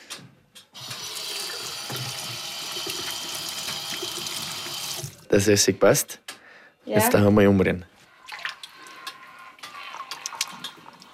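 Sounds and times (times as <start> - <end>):
water gushing from a running tap: 0.8 - 5.3, 9.6 - 11.1
speech: 5.3 - 6.2, 6.9 - 7.9.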